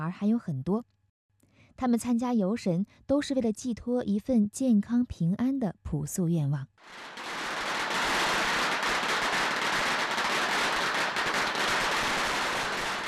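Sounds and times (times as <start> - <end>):
speech: 0.0 - 1.0, 1.8 - 7.2
long string of firecrackers exploding in Dongmen village to open a deity-welcoming procession: 6.8 - 13.0.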